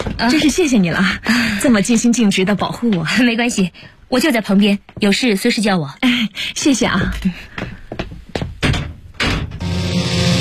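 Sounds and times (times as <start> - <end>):
speech: 0.2 - 7.6
dull thuds of a room door being closed: 8.6 - 9.6.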